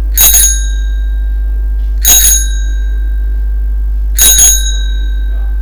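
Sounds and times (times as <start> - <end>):
mini bicycle bell: 0.2 - 1.5, 2.0 - 3.4, 4.2 - 5.5.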